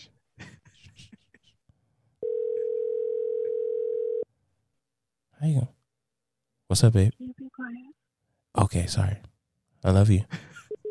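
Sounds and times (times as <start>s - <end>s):
outgoing phone call ringing tone: 2.2s - 4.3s
speech: 5.4s - 5.8s, 6.7s - 8.0s, 8.6s - 10.5s.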